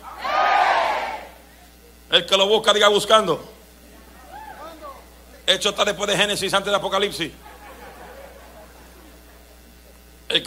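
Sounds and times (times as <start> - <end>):
audience shouting amen: 0.0 - 1.4
speech: 2.2 - 3.5, 5.5 - 7.5
laughter: 7.4 - 10.0.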